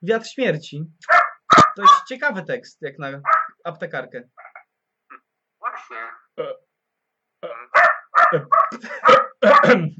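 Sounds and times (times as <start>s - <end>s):
speech: 0.0s - 1.2s, 1.8s - 4.4s, 5.9s - 6.6s, 8.3s - 9.9s
dog barking and yapping: 1.0s - 2.1s, 3.2s - 3.6s, 7.7s - 9.8s.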